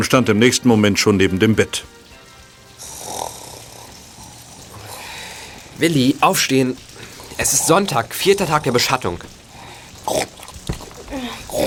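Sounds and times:
speech: 0.0s - 2.0s, 5.8s - 9.4s
person grunting and snorting like a piglet: 2.8s - 4.0s, 11.0s - 11.6s.

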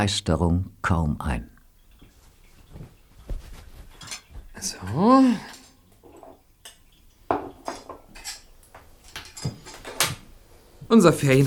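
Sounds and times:
speech: 0.0s - 1.5s, 4.6s - 5.5s, 10.9s - 11.4s
faint watery sounds: 1.6s - 11.4s
dishes and cutlery clattering during washing up by hand: 3.4s - 10.3s.

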